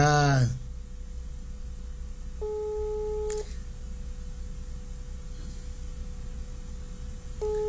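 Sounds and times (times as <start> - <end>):
telephone ringback tone on an unanswered call: 2.4 - 3.4, 7.4 - 7.6.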